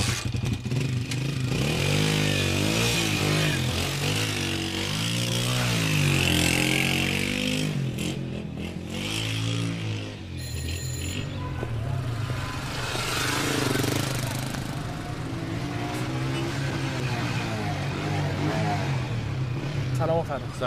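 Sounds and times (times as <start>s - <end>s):
motorcycle engine running: 0.0s - 19.8s.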